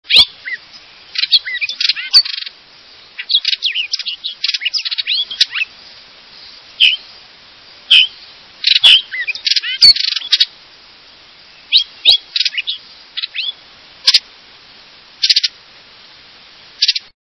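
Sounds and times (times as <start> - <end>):
Hooded Oriole songs: 0.0 - 17.1.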